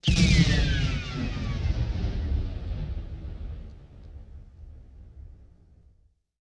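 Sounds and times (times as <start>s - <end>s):
WWII period combat flare: 0.0s - 5.9s
WWII period combat explosion: 0.0s - 6.1s.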